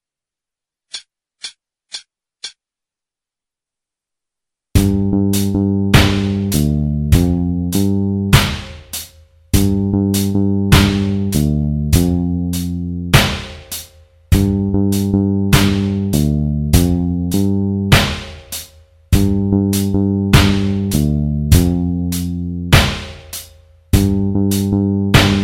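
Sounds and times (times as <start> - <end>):
blues riff backing track in G: 4.8 - 9.0, 9.6 - 13.8, 14.4 - 18.3, 19.2 - 23.2, 24.0 - 25.4.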